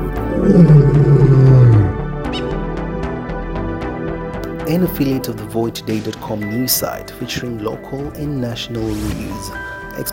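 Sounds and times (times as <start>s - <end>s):
deep loud growling roar: 0.0s - 2.2s
speech: 0.5s - 1.2s, 4.7s - 10.1s.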